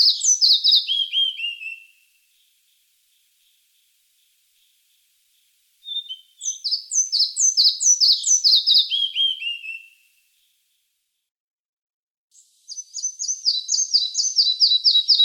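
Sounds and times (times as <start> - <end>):
red-breasted flycatcher singing: 0.0 - 5.0, 5.8 - 10.0, 12.4 - 15.2.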